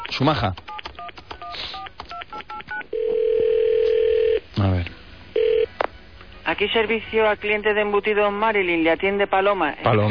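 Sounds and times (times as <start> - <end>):
speech: 0.2 - 0.6, 6.5 - 10.0
continuous telephone line tone as the line connects: 0.8 - 4.4, 5.3 - 5.7.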